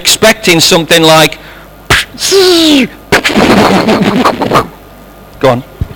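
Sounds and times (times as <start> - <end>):
speech: 0.0 - 1.4, 2.2 - 4.8, 5.4 - 5.7
voice imitating a firework being lit and launched: 1.9 - 4.8.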